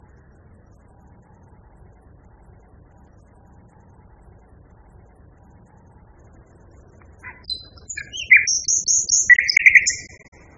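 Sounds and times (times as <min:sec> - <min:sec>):
common nightingale song with high thin whistles and short buzzy notes: 0:07.2 - 0:10.3.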